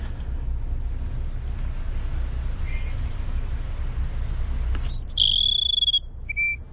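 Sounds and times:
constant low rumble: 0:00.0 - 0:05.2
faint high ticking: 0:00.0 - 0:06.1
Cassin's Sparrow singing in brushy open country: 0:00.6 - 0:06.7.

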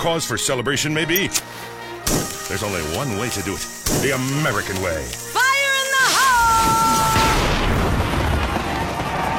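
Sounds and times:
speech: 0:00.0 - 0:05.4
fireworks boom with rumbling crackling decay: 0:06.6 - 0:09.3.

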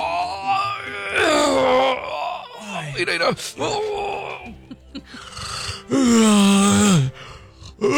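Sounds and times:
person groaning while yawning and stretching: 0:00.0 - 0:03.0, 0:03.6 - 0:04.7, 0:05.9 - 0:07.2
speech: 0:03.0 - 0:04.6, 0:05.9 - 0:07.1.

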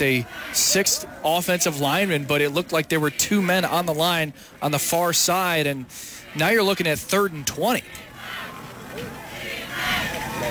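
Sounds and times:
speech: 0:00.0 - 0:08.1
football crowd roaring and cheering: 0:00.0 - 0:10.4
group chanting: 0:08.0 - 0:10.4.

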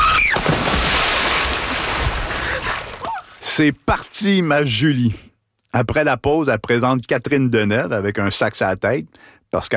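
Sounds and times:
splash of person jumping into water: 0:00.2 - 0:03.4
speech: 0:03.5 - 0:09.7.

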